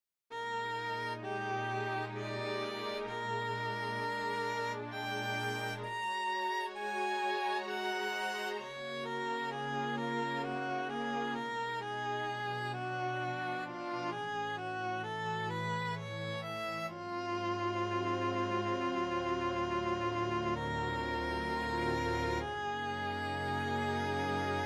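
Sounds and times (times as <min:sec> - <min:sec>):
soft synth violin: 0:00.3 - 0:24.6.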